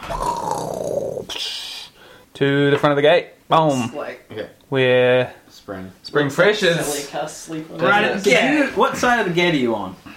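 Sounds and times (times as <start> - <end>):
person voicing a roar imitating a wounded creature: 0.0 - 1.4
speech: 2.4 - 10.1.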